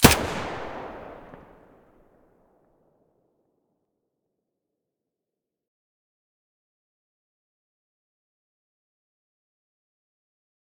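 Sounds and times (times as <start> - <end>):
MP5 gun muzzle blast: 0.0 - 1.6.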